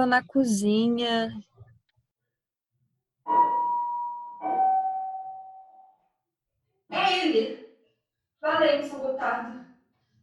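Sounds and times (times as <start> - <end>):
speech: 0.0 - 1.5, 7.2 - 7.6, 8.4 - 9.7
house doorbell chiming a two-note ding-dong: 3.3 - 6.0.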